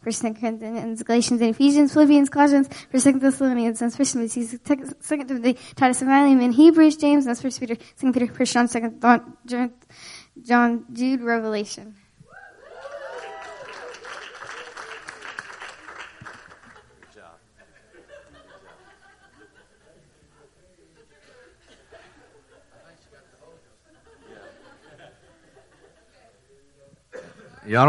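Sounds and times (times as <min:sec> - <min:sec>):
speech: 0:00.1 - 0:12.0, 0:27.7 - 0:27.8
single person cheering loudly: 0:12.3 - 0:14.1
scattered crowd laughter: 0:12.8 - 0:26.3.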